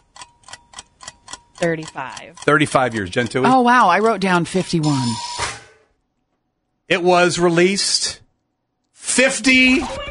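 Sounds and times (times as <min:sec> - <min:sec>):
quiz game timer ticking: 0:00.0 - 0:05.4
speech: 0:01.6 - 0:05.4, 0:06.9 - 0:08.2, 0:09.2 - 0:10.0.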